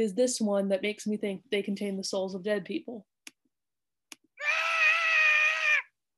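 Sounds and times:
speech: 0.0s - 3.1s
screaming goat sound effect: 4.4s - 6.0s.

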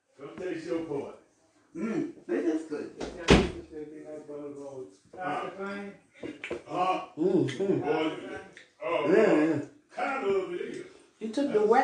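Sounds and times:
speech: 0.4s - 11.8s
door thud: 3.0s - 3.6s.

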